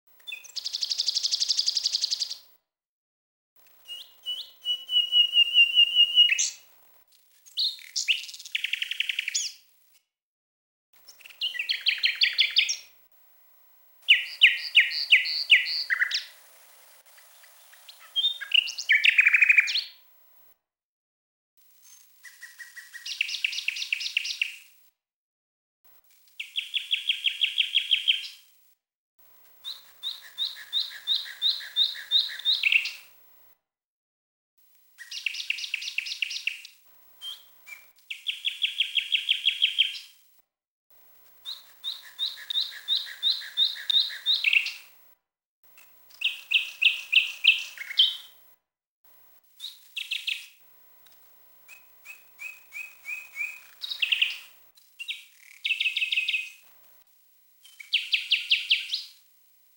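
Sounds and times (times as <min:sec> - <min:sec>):
nightingale: 0:00.2 - 0:02.6, 0:03.6 - 0:06.7, 0:07.5 - 0:09.7, 0:11.0 - 0:12.9, 0:14.0 - 0:20.1, 0:21.8 - 0:24.8, 0:26.4 - 0:28.5, 0:29.5 - 0:33.2, 0:35.0 - 0:40.2, 0:41.4 - 0:44.9, 0:45.8 - 0:48.4, 0:49.6 - 0:50.6, 0:51.7 - 0:56.7, 0:57.6 - 0:59.2.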